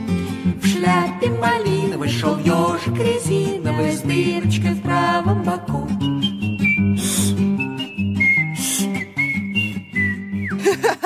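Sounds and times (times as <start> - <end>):
steady musical backing: 0.3 - 11.0
speech: 0.7 - 6.3
woman whistling a tune: 5.9 - 10.7
laughter: 10.5 - 11.0.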